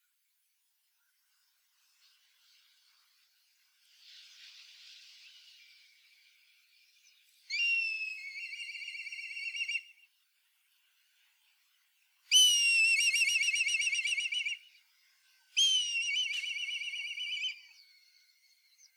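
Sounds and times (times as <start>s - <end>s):
black kite giving a shrill quavering whistle: 7.5s - 10.1s, 12.3s - 14.7s, 15.6s - 18.1s.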